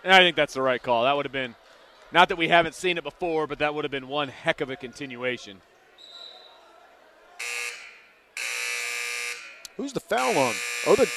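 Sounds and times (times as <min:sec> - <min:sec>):
speech: 0:00.0 - 0:05.7, 0:09.8 - 0:11.1
faint crowd murmur: 0:00.0 - 0:08.4
basketball arena buzzer blaring: 0:07.4 - 0:11.1.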